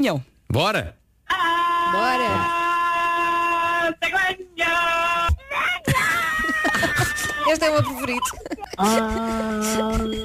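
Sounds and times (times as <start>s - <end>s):
speech: 0.0s - 1.0s, 1.9s - 2.6s, 7.5s - 10.2s
man screaming: 1.3s - 7.5s
laughter: 5.8s - 10.2s.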